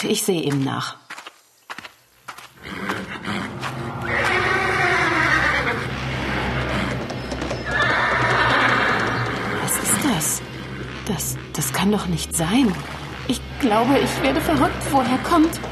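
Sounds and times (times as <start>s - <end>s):
speech: 0.0s - 1.0s, 11.2s - 15.7s
horse hooves knocking in a stable: 0.0s - 15.7s
horse neighing in a stable: 2.6s - 10.8s.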